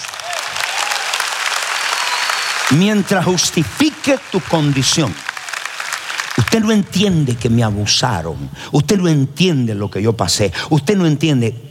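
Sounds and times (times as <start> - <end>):
large audience clapping: 0.0 - 7.7
speech: 2.7 - 5.3, 6.5 - 11.6.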